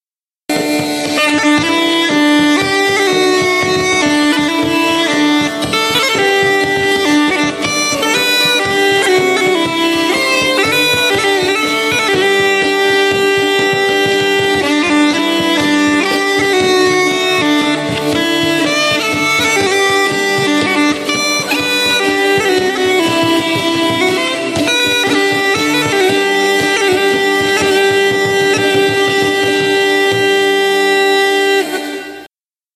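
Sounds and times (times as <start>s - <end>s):
bagpipes playing: 0.5s - 32.3s.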